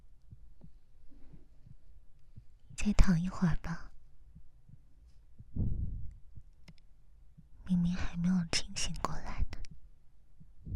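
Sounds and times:
quiet hum: 0.0s - 10.7s
soft low heartbeat thumps: 0.3s - 0.7s, 4.4s - 6.5s, 10.4s - 10.7s
speech: 2.8s - 3.8s.

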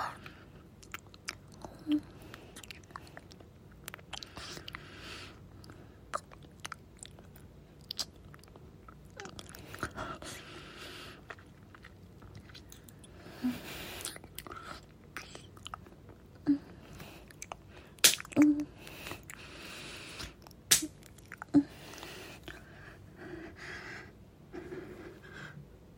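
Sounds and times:
food being chewed with soft wet smacks: 0.8s - 4.9s, 5.6s - 10.0s, 11.1s - 13.2s, 14.0s - 16.2s, 17.0s - 19.5s, 20.2s - 22.6s
breathy sounds: 4.2s - 6.0s, 9.6s - 11.2s, 16.6s - 18.0s, 18.8s - 20.4s, 21.6s - 25.6s.

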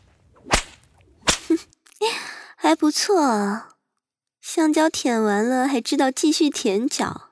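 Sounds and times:
whip lashes striking: 0.4s - 1.6s
speech: 2.7s - 3.7s, 4.5s - 7.3s.

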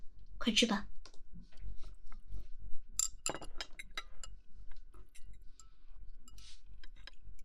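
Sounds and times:
speech: 0.5s - 0.9s
glasses clinking in a toast: 3.0s - 4.4s.

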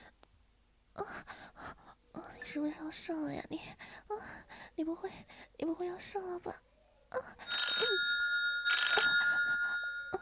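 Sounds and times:
speech: 2.5s - 7.4s
bright bell-like mobile phone ringtone: 7.5s - 10.2s.

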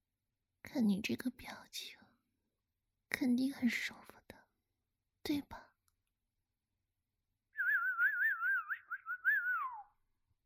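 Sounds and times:
speech: 0.6s - 2.0s, 3.2s - 4.2s, 5.3s - 5.7s
person whistling a wavering warbling tune with trills: 7.6s - 9.9s.

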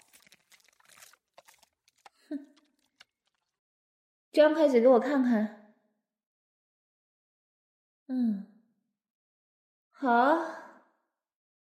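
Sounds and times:
person chewing and crunching food: 0.0s - 3.6s
speech: 4.4s - 5.6s, 10.0s - 10.6s.

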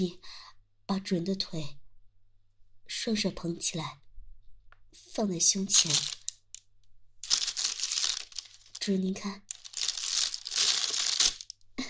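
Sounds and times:
speech: 0.0s - 1.8s, 2.9s - 4.0s, 4.9s - 6.2s, 8.8s - 9.5s
plastic bag holding a whip and a collar being handled, crinkling: 5.7s - 6.5s, 7.2s - 8.9s, 9.5s - 11.5s.

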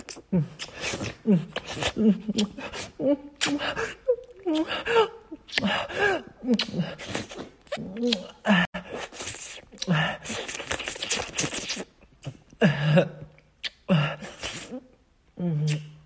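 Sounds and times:
wet licking mouth noises performed by a voice: 0.0s - 12.5s, 15.6s - 15.9s.

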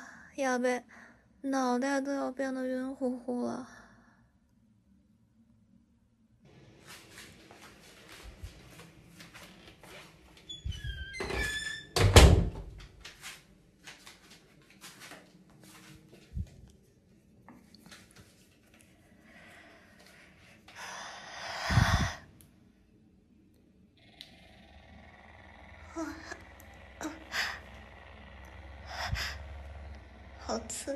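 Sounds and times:
speech: 0.4s - 3.8s
faint low hum: 0.9s - 30.9s
heavy breathy panting: 28.8s - 29.8s.

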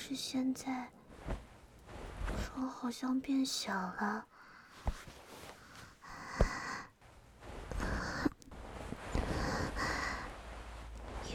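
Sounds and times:
speech: 0.1s - 1.5s, 2.6s - 5.0s
person lying in bed breathing: 4.3s - 7.0s, 7.7s - 8.4s, 9.1s - 10.8s.

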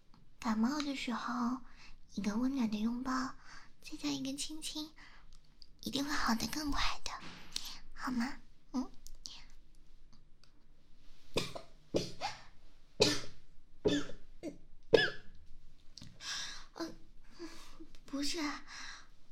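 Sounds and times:
speech: 0.4s - 5.1s, 5.8s - 7.3s, 8.0s - 9.0s
person coughing from choking: 11.4s - 15.3s.

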